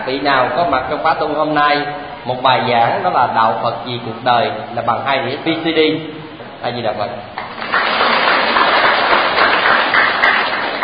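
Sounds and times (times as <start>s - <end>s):
speech: 0.1s - 7.4s
audience applause at a Buddhist retreat: 7.4s - 10.8s.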